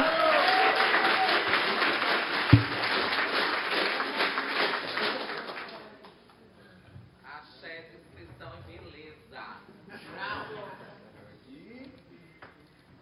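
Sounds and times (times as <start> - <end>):
audience applause of many hands clapping: 0.0 - 6.2.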